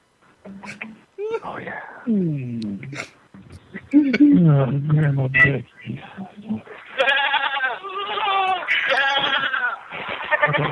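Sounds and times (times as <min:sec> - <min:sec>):
speech: 0:00.5 - 0:03.1, 0:04.0 - 0:06.7
sheep bleating: 0:07.0 - 0:10.7.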